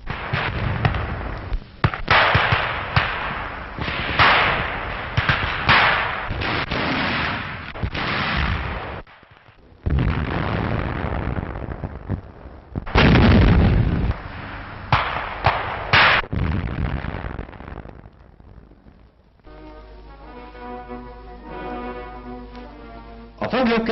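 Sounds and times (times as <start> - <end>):
gunfire in dense bursts during infantry assault: 0.0 - 9.4, 14.5 - 16.3
heavier blasts during infantry assault: 0.0 - 23.4
orchestral music: 19.5 - 23.9.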